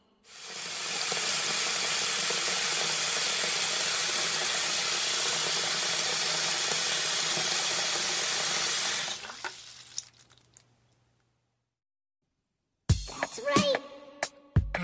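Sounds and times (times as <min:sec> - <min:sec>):
tap water rushing into a balloon: 0:00.3 - 0:10.5
person speaking: 0:13.2 - 0:13.9.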